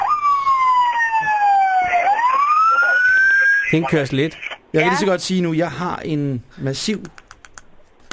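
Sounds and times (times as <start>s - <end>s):
fire engine siren wailing at a large fire brigade event: 0.0s - 3.7s
speech: 3.7s - 7.2s.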